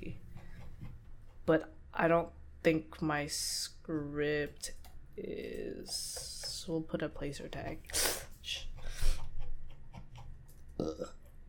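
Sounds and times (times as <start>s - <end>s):
speech: 1.5s - 8.6s, 10.8s - 11.2s
low burp: 10.8s - 11.2s
throaty vocal sound: 10.8s - 11.2s.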